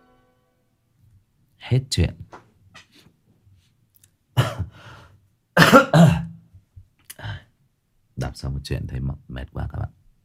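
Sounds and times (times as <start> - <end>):
speech: 1.7 - 2.3, 8.4 - 10.0
person coughing: 4.4 - 4.8, 5.6 - 6.4.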